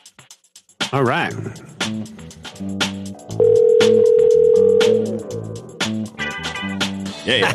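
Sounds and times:
speech: 0.9s - 5.7s, 7.2s - 7.5s
steady single-pitch telephone dial tone: 3.4s - 5.2s
laughter: 7.2s - 7.5s.

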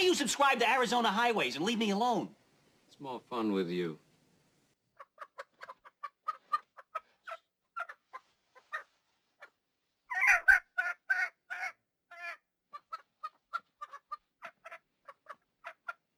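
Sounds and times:
speech: 0.2s - 2.4s, 3.0s - 4.0s
chicken clucking: 4.9s - 16.1s.

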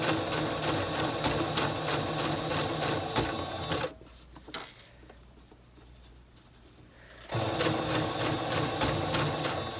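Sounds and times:
sewing machine stitching a blind hem: 0.0s - 3.9s, 7.3s - 9.7s.

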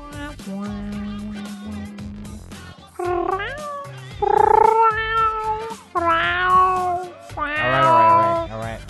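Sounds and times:
speech: 0.4s - 0.8s
kittens meowing with shrill yowling wails: 3.0s - 8.6s.

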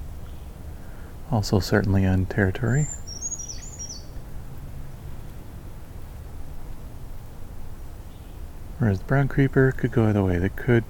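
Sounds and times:
steady low background noise: 0.0s - 10.8s
speech: 1.3s - 3.0s, 8.8s - 10.8s
black-capped chickadee whistled song in Beverly Swamp: 2.8s - 4.2s.

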